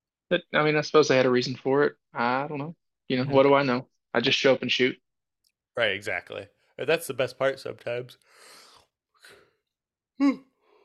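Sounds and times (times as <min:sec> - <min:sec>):
speech: 0:00.3 - 0:05.0, 0:05.8 - 0:08.6, 0:10.2 - 0:10.5
quiet breathing: 0:08.2 - 0:09.7
brief voiced yawn: 0:10.2 - 0:10.8.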